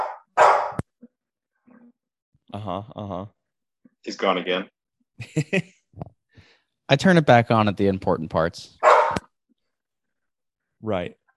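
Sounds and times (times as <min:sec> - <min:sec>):
pit bull dog barking: 0:00.0 - 0:00.8, 0:08.8 - 0:09.2
speech: 0:02.5 - 0:03.4, 0:04.0 - 0:05.8, 0:06.9 - 0:08.8, 0:10.8 - 0:11.2.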